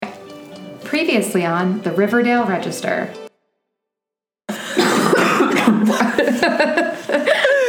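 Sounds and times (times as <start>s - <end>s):
speech: 1.0s - 3.2s
two people coughing at once: 4.5s - 6.2s
laughter: 4.5s - 7.6s.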